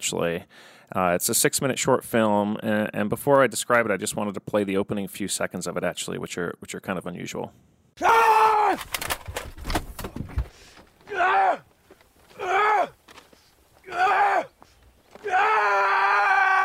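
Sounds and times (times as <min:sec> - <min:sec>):
speech: 0:00.1 - 0:09.1
man screaming angrily: 0:08.0 - 0:08.8, 0:11.0 - 0:11.7, 0:12.3 - 0:13.0, 0:13.8 - 0:14.5, 0:15.2 - 0:16.6
sharp thuds: 0:08.7 - 0:11.2.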